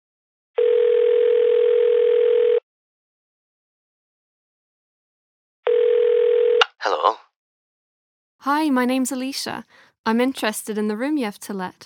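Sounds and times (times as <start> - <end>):
telephone ringing tone heard down the line: 0.6 - 2.6, 5.6 - 6.6
speech: 8.4 - 11.8.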